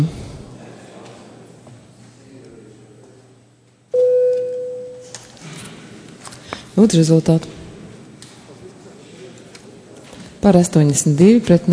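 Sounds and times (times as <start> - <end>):
parliament chamber electronic bell tone before a vote: 4.0 - 5.1
speech: 6.8 - 7.6, 10.4 - 11.7.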